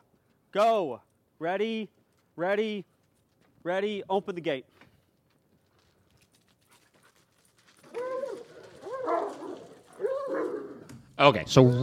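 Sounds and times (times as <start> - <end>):
speech: 0.5 - 2.9, 3.6 - 4.8, 11.2 - 11.8
dogs barking: 7.9 - 10.8.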